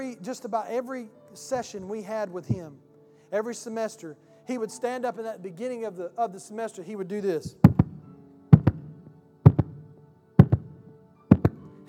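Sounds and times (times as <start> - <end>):
speech: 0.0 - 7.7
paired thumps from knocking on something mimicking a heartbeat: 7.5 - 11.8.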